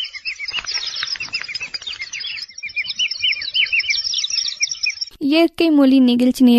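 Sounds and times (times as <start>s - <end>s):
rare birds of the Western Ghats chirping and twittering: 0.0s - 5.2s
speech: 5.3s - 6.5s.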